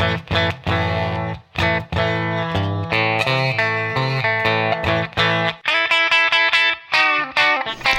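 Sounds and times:
clean electric guitar playing chugging chord riff: 0.0s - 7.9s.

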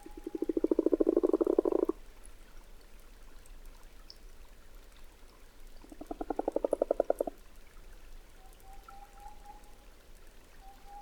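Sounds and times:
common frog croaking by a temporary forest pond in Valdrôme forest: 0.0s - 2.0s, 5.9s - 7.4s
quiet background hiss: 0.0s - 11.0s.

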